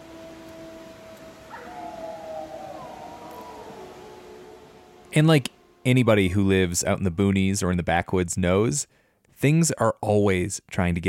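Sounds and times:
wolves howling: 0.0 - 6.9
faint hiss: 0.0 - 11.0
speech: 5.2 - 11.0.

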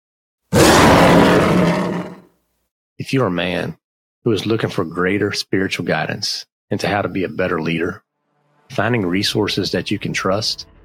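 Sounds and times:
lion roar sound effect: 0.5 - 2.3
speech: 3.0 - 8.0, 8.7 - 10.7.

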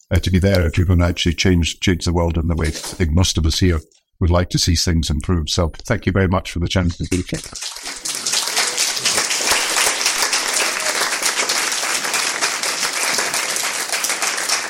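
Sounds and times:
speech: 0.1 - 8.0
large audience applauding after a speech: 7.4 - 14.6.

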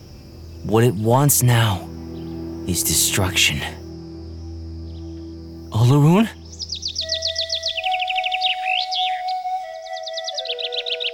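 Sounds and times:
speech: 0.7 - 1.9, 2.7 - 3.8, 5.7 - 6.4
small bird twittering: 6.4 - 11.1.

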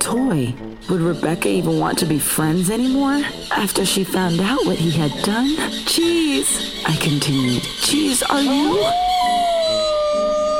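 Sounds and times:
speech: 0.1 - 9.1
dog howling: 8.7 - 10.5.

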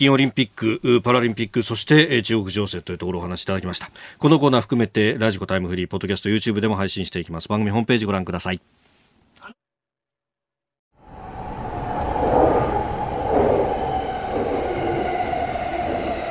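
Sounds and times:
speech: 0.0 - 8.8
commuter train interior rumble: 11.0 - 16.2.

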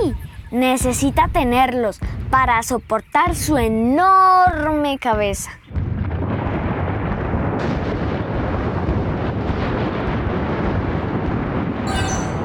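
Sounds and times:
speech: 0.5 - 5.6
volcano erupting with loud roar and deep rumble: 6.0 - 12.4.

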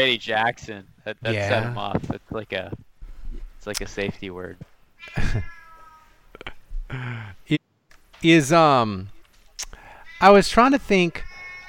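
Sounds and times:
speech: 0.0 - 2.9, 3.6 - 5.6, 6.9 - 7.6, 8.2 - 9.1, 10.2 - 11.3
cat yowling and meowing: 5.0 - 6.2, 11.2 - 11.6
laughter: 5.1 - 5.5.

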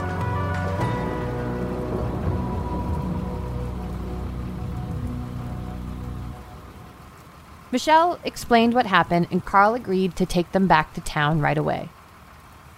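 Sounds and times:
low droning hum: 0.0 - 7.6
steady heavy rain pouring: 0.0 - 12.7
faint rumble: 0.8 - 7.7
speech: 7.7 - 12.0.

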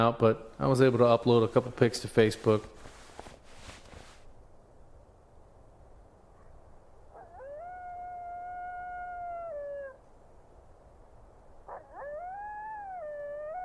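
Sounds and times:
speech: 0.0 - 2.9
hiss: 0.0 - 13.6
rustling: 0.5 - 4.4
coyotes howling at night: 7.1 - 10.0, 11.6 - 13.6.

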